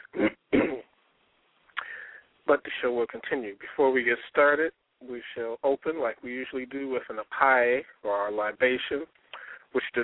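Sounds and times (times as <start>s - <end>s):
throat clearing: 0.0s - 0.9s
person coughing: 0.1s - 0.9s
speech: 2.5s - 10.0s.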